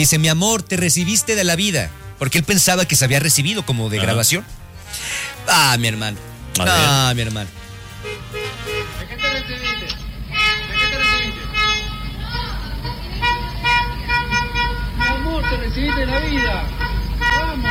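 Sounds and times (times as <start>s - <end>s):
speech: 0.0s - 7.6s, 15.5s - 16.8s
traffic rumble on a busy street: 0.0s - 17.7s
several car horns honking in celebration: 0.7s - 17.7s.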